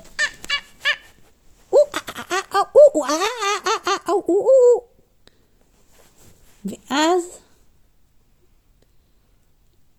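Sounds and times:
person imitating a monkey with squeaky calls and chattering hoots: 0:00.0 - 0:01.1, 0:01.7 - 0:04.9
speech: 0:03.0 - 0:03.6.

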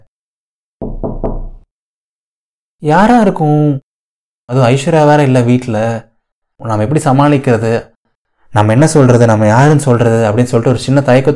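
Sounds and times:
solid knocks on a wooden door: 0:00.8 - 0:01.6
speech: 0:02.8 - 0:03.8, 0:04.5 - 0:07.9, 0:08.5 - 0:11.3.

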